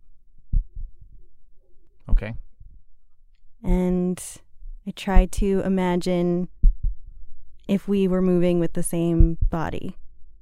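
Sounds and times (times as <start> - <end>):
low heartbeat: 0.5 - 1.4, 3.6 - 7.6, 8.2 - 10.4
speech: 2.2 - 2.5, 3.6 - 6.6, 7.7 - 10.0.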